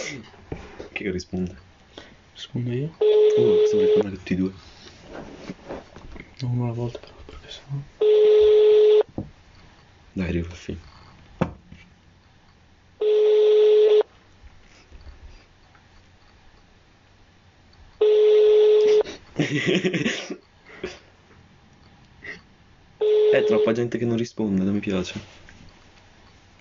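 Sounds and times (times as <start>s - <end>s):
speech: 0.1s - 1.7s, 2.4s - 5.6s, 6.4s - 8.0s, 10.2s - 10.9s, 19.5s - 20.2s, 23.6s - 25.4s
telephone ringback tone: 3.0s - 4.1s, 8.0s - 9.1s, 13.0s - 14.1s, 18.0s - 19.0s, 23.0s - 23.8s
laughter: 19.4s - 20.9s.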